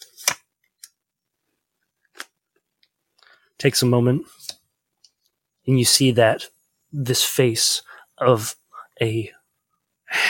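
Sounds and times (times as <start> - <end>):
playing cards being drawn and shuffled: 0.0 - 1.0, 1.8 - 3.0, 4.3 - 4.7
speech: 3.6 - 4.4, 5.6 - 9.4.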